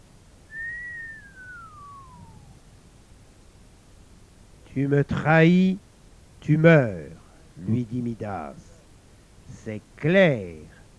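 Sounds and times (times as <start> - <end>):
quiet hiss: 0.0 - 10.9
long thin whistle of astonishment: 0.5 - 2.6
speech: 4.8 - 5.8, 6.4 - 8.7, 9.5 - 10.8.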